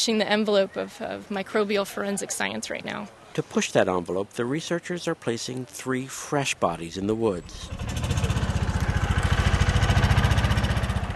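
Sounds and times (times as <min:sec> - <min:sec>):
speech: 0:00.0 - 0:08.3
small tractor engine chugging in the woods: 0:07.5 - 0:11.1.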